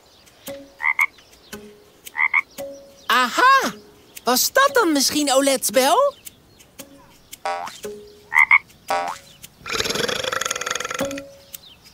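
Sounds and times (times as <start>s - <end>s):
frog croaking: 0.8s - 1.2s, 2.1s - 2.5s, 7.4s - 11.3s
speech: 3.2s - 6.2s.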